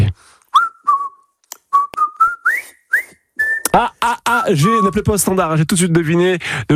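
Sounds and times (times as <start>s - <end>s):
person whistling a brisk march tune: 0.5s - 3.7s
speech: 4.5s - 6.7s.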